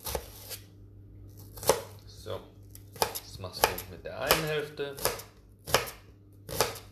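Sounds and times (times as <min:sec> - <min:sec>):
knife dicing half an onion on a cutting board: 0:00.0 - 0:00.7, 0:01.4 - 0:02.0, 0:02.8 - 0:06.9
speech: 0:03.4 - 0:05.3.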